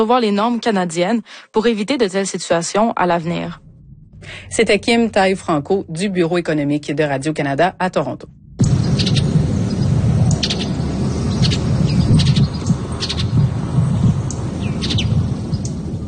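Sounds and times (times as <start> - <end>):
speech: 0.0 - 8.7
loud steady low rumble: 2.7 - 16.0
mountain bluebird song: 8.6 - 15.8.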